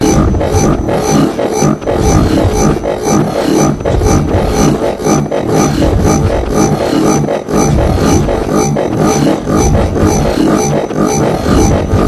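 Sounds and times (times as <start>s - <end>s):
futuristic energy machine drone: 0.0s - 12.0s
sci-fi robotic energy machine power surges: 0.0s - 12.0s.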